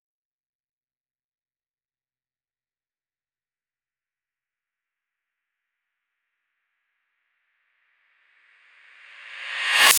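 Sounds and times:
reversed sound: 9.0s - 9.9s.

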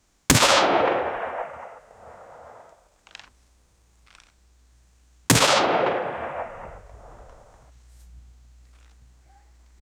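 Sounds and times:
loud sharp shots of hunting guns: 0.3s - 2.8s, 5.3s - 7.7s.

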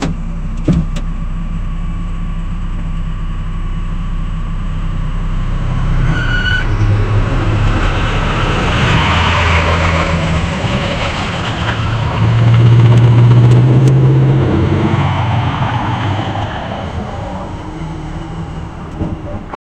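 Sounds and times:
limousine approaching slowly: 0.0s - 19.6s
limousine brakes: 5.6s - 19.6s.

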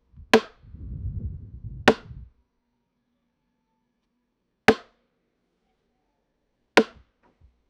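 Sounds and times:
loud wooden baseball bat crack: 1.9s - 2.2s, 6.8s - 7.1s.

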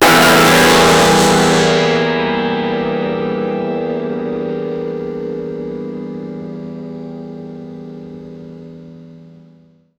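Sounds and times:
horn: 0.0s - 2.2s
guitar: 0.0s - 6.9s.

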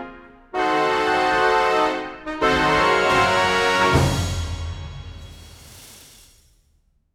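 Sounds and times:
explosive triumphant mega win sound: 0.5s - 4.7s.

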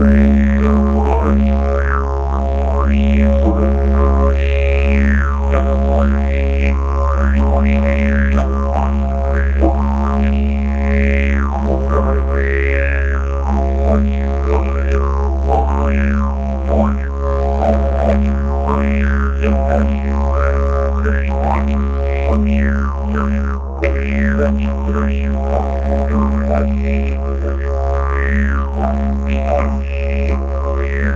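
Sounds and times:
melodic smooth gypsy didgeridoo: 0.0s - 31.1s.

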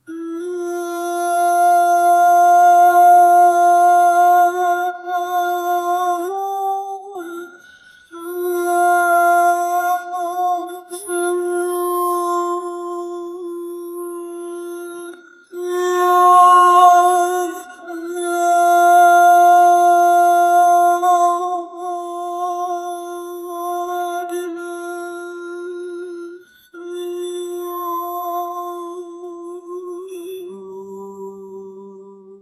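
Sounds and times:
aarti prayer chant: 0.0s - 32.4s.

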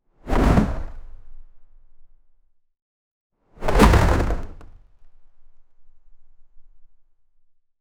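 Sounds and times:
wooden object thrown fast: 3.6s - 4.8s.

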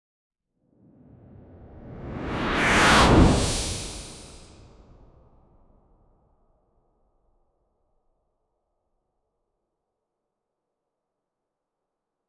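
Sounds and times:
bright mystical whoosh: 2.0s - 4.8s.

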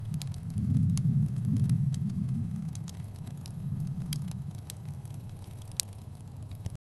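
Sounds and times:
distant campfire crackling: 0.0s - 6.8s.

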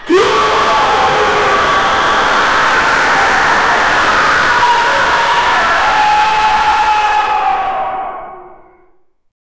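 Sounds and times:
massive discordant roar: 0.0s - 9.0s.

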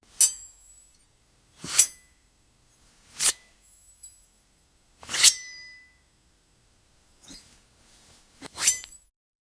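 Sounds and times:
medieval sword being unsheathed: 1.6s - 2.1s, 3.2s - 3.5s, 5.0s - 5.6s, 8.4s - 9.0s.

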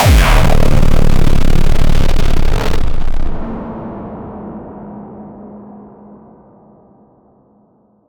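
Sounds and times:
hard hitting industrial techno music: 0.0s - 3.6s.

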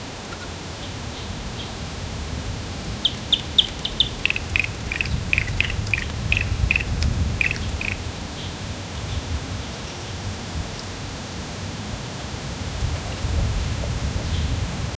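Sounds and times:
gentle wind: 0.0s - 14.9s
soft tropical birds chirping: 0.8s - 8.6s.

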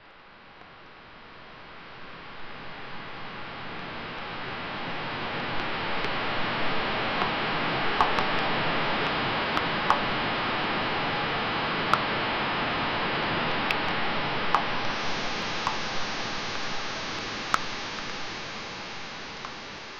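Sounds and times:
super slow motion rain: 3.2s - 19.9s.

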